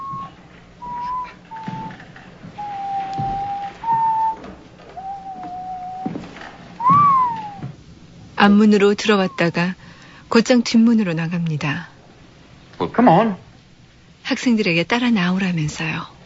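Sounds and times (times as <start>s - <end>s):
man whistling a classical overture while walking into a classroom: 0.0s - 2.0s, 2.6s - 6.2s, 6.8s - 7.7s
speech: 8.4s - 11.9s, 12.8s - 13.4s, 14.3s - 16.1s.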